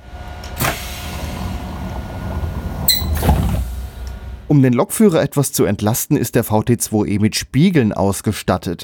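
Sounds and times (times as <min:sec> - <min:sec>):
sharp air hiss of railcar compressed-air door closing: 0:00.6 - 0:01.8
solid thud and rumble of railcar door closing: 0:03.1 - 0:03.8
speech: 0:04.5 - 0:08.8.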